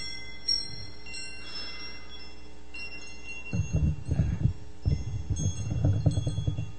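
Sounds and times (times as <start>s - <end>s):
wind chimes ringing: 0.0s - 6.7s
low thumps: 3.5s - 6.7s.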